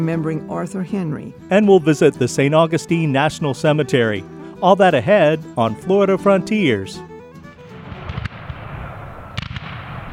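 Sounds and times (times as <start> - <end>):
speech: 0.0 - 7.1
cannon fire booming: 7.8 - 10.1.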